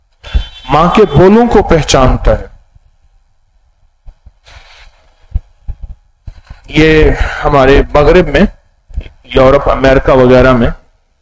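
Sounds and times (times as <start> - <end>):
faint hum: 0.0 - 11.2
low heartbeat thumps: 0.2 - 0.6, 3.9 - 4.4, 5.2 - 7.4
burst of hiss: 0.2 - 0.8, 4.4 - 5.1
speech: 0.7 - 2.5, 6.7 - 8.6, 9.3 - 10.8.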